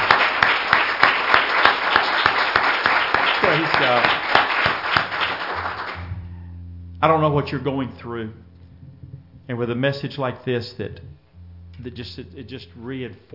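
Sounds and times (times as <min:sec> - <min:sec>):
crowd applauding: 0:00.0 - 0:06.1
speech: 0:07.0 - 0:08.6, 0:09.5 - 0:11.2, 0:11.8 - 0:13.3.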